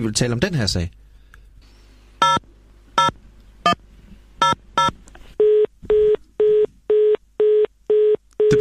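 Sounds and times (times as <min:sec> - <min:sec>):
speech: 0:00.0 - 0:01.0
touch-tone keypad tones dialing a telephone number: 0:04.4 - 0:08.5.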